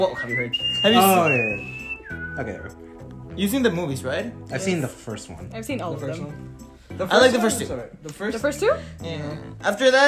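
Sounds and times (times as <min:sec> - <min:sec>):
speech: 0:00.0 - 0:01.7, 0:02.4 - 0:10.0
person whistling a signal whistle tune: 0:00.0 - 0:02.8.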